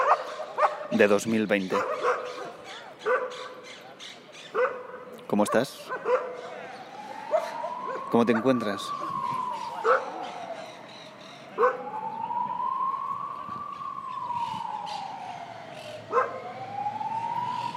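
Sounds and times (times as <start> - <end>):
ambulance and police sirens wailing: 0.0 - 4.0, 4.6 - 17.7
dogs barking: 0.0 - 8.6, 9.7 - 10.6, 11.5 - 11.9, 16.1 - 16.5
speech: 1.0 - 2.4, 5.3 - 6.2, 8.1 - 9.0.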